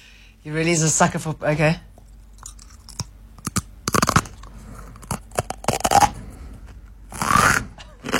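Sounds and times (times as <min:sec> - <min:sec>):
speech: 0:00.4 - 0:01.9
person chewing broken light bulb glass as a sideshow stunt: 0:02.2 - 0:06.1.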